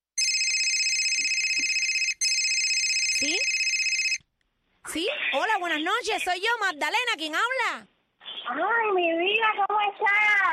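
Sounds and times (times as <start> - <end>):
telephone ringing with electronic trill: 0.2 - 4.2
speech: 4.9 - 7.9, 8.5 - 10.5.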